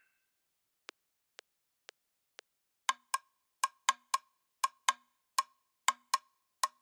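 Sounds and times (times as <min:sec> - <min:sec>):
Latin American rumba yambu rhythm: 0:02.9 - 0:06.8.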